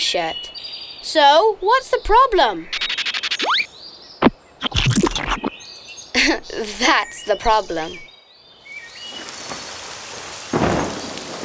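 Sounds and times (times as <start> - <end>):
high chirps: 0.0 - 8.1
speech: 0.1 - 0.5, 1.1 - 2.8, 6.3 - 8.1
steady rain: 6.2 - 11.4.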